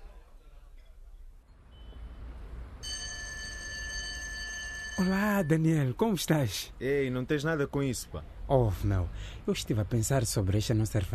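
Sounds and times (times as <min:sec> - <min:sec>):
telephone ringing: 0:02.8 - 0:05.6
speech: 0:05.0 - 0:11.1.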